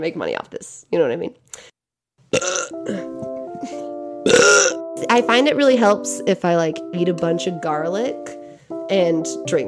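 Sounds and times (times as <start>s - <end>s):
speech: 0.0s - 1.7s, 4.4s - 9.6s
loud drawn-out burp: 2.3s - 3.1s, 4.2s - 4.8s.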